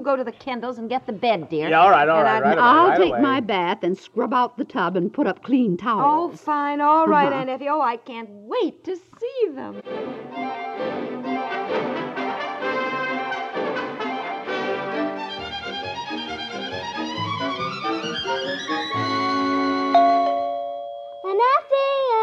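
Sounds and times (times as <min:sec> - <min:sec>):
speech: 0:00.0 - 0:11.1
music: 0:09.7 - 0:20.4
doorbell chime: 0:19.9 - 0:21.4.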